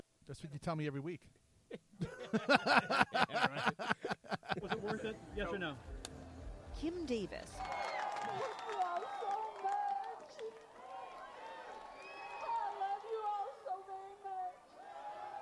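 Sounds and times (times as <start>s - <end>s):
speech: 0.3s - 6.0s, 6.8s - 9.2s
laughter: 2.0s - 5.5s
large crowd of supporters cheering and shouting: 7.4s - 15.4s.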